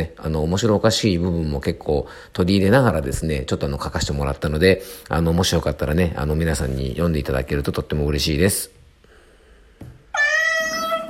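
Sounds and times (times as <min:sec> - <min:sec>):
speech: 0:00.0 - 0:08.8
cat meowing: 0:10.1 - 0:11.0.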